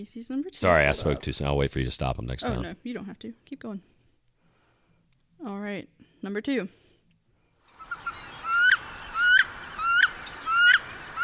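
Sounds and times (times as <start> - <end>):
speech: 0.0 - 4.0, 5.4 - 6.8
wood duck hen squealing calls: 7.8 - 11.2.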